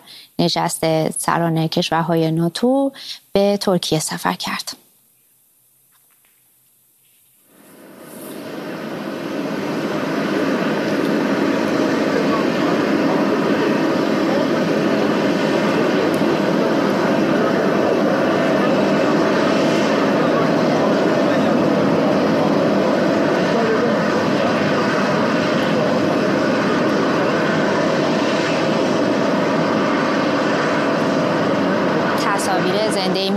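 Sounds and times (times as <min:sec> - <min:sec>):
speech: 0:00.4 - 0:04.8
presidential jet airplane engines roaring on the ground after landing: 0:07.5 - 0:33.3.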